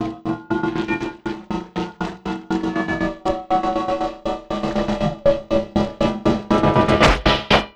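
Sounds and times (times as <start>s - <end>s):
beat made with an envelope: 0.7s - 7.7s.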